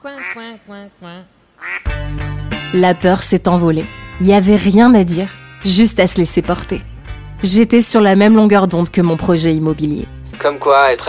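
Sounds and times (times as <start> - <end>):
speech: 0.0 - 1.4, 2.1 - 11.0
ducks quacking by a pond: 0.2 - 0.4, 1.6 - 1.9.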